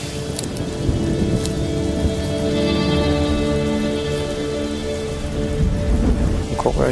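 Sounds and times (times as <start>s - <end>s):
heavy rain: 0.0s - 6.9s.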